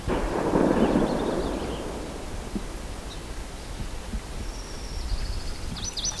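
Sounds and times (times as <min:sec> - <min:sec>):
gunshot: 0:00.1 - 0:03.3
bird: 0:00.5 - 0:02.2, 0:03.0 - 0:06.1.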